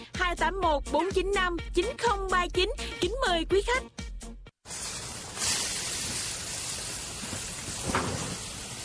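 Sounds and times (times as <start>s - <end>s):
speech: 0.4s - 4.0s
steady rain hiss: 4.7s - 8.8s.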